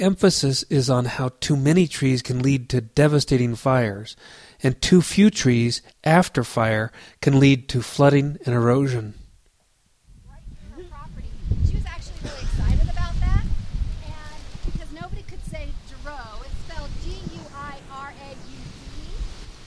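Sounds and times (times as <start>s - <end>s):
speech: 0.0s - 9.2s
strong outdoor wind buffeting the microphone: 10.1s - 19.6s.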